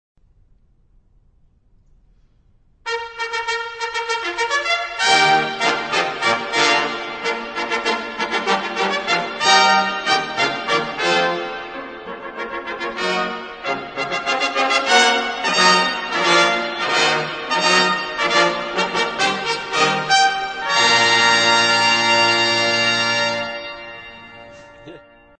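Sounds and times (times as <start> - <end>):
trumpets playing: 2.9 - 25.2.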